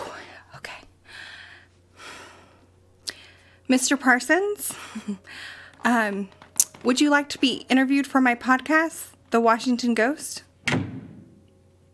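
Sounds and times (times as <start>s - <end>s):
speech: 3.7s - 10.8s
door slamming shut: 10.6s - 11.4s.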